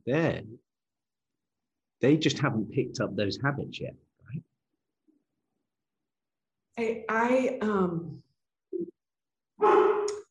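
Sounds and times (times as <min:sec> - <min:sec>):
speech: 0:00.0 - 0:00.6, 0:02.0 - 0:04.5, 0:06.8 - 0:08.2, 0:09.6 - 0:09.9
dog barking: 0:09.6 - 0:10.1.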